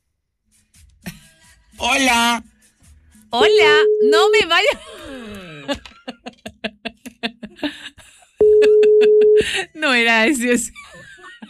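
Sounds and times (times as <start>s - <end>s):
speech: 1.8s - 2.5s, 3.3s - 5.9s, 8.6s - 10.8s
long steady telephone tone: 3.4s - 4.5s, 8.4s - 9.4s
short electronic beeps: 3.4s - 4.5s, 8.4s - 9.4s
laughter: 4.6s - 9.8s, 10.7s - 11.4s.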